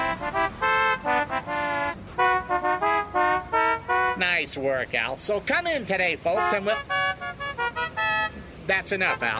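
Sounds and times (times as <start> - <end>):
novelty car horn playing a musical phrase at a car dealership: 0.0 - 4.4, 6.3 - 8.5
speech: 4.4 - 7.0, 8.7 - 9.3.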